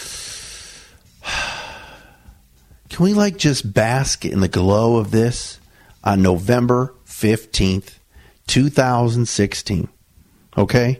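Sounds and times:
deep breath: 0:00.0 - 0:02.8, 0:05.6 - 0:06.0, 0:08.1 - 0:08.4
speech: 0:03.0 - 0:10.0, 0:10.6 - 0:10.9.

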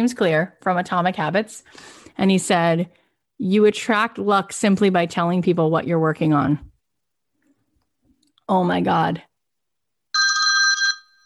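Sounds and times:
speech: 0:00.0 - 0:06.7, 0:08.5 - 0:09.3
electronic telephone ring: 0:10.2 - 0:11.2.

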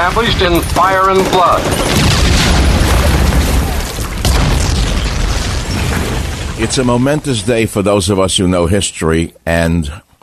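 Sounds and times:
artillery shells exploding during an Allied warship bombardment in World War II: 0:00.0 - 0:08.0
speech: 0:00.1 - 0:02.2, 0:06.6 - 0:10.0.

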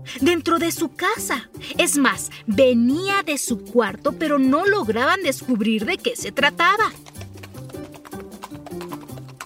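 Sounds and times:
speech: 0:00.0 - 0:07.1
horse hooves clip-clopping: 0:06.3 - 0:09.4.

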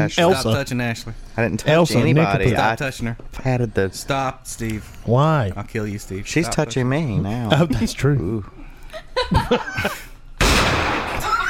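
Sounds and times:
speech: 0:00.0 - 0:08.6, 0:09.2 - 0:10.1
voices talking and chuckling: 0:06.6 - 0:10.2
gunshot in a video game: 0:10.4 - 0:11.3.

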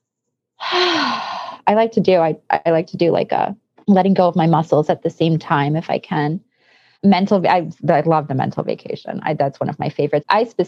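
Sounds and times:
speech: 0:01.6 - 0:10.6
deep breath with a faint voiced hum: 0:06.5 - 0:07.0.

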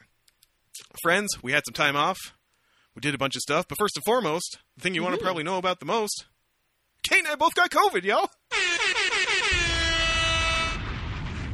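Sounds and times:
speech: 0:01.0 - 0:02.4, 0:03.0 - 0:06.3, 0:07.0 - 0:08.7
air horn blaring: 0:08.5 - 0:11.0.

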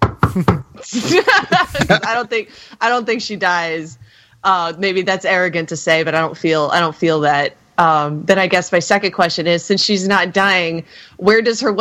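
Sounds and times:
knocking on wood: 0:00.0 - 0:00.7
laughter: 0:00.3 - 0:02.5
speech: 0:00.4 - 0:11.7.

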